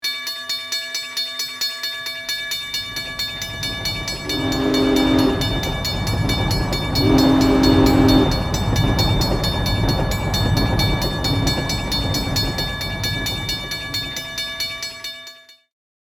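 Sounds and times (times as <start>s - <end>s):
train crossing bells: 0.0s - 15.7s
train approaching: 2.0s - 15.1s.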